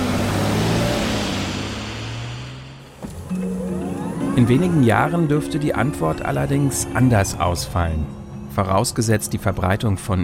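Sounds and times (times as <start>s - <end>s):
combustion car engine revving: 0.0s - 5.2s
speech: 4.4s - 10.2s.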